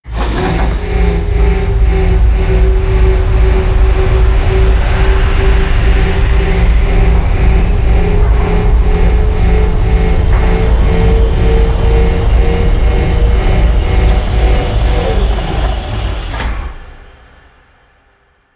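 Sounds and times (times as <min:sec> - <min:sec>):
platform rising: 0:00.0 - 0:17.6.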